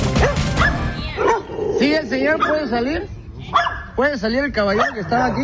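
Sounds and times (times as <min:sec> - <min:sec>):
dog barking and whining: 0:00.2 - 0:01.7, 0:02.3 - 0:02.8, 0:03.5 - 0:04.0, 0:04.6 - 0:05.4
speech: 0:02.3 - 0:05.4.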